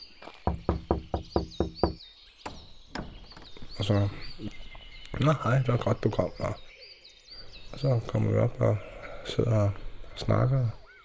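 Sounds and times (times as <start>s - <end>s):
birds chirping: 0.0s - 11.0s
knocking on a back door: 0.4s - 3.6s
speech: 3.8s - 4.6s, 5.2s - 6.6s, 7.8s - 10.8s.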